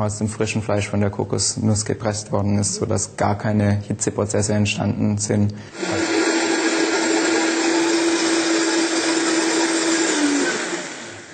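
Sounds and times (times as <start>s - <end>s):
speech: 0.0s - 6.2s
kitchen blender whirring at high speed through a smooth blend: 5.7s - 11.3s.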